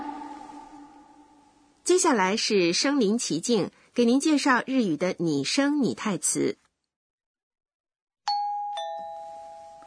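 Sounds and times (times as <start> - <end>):
speech: 1.9 - 6.6
doorbell two-note ding-dong: 8.3 - 9.8.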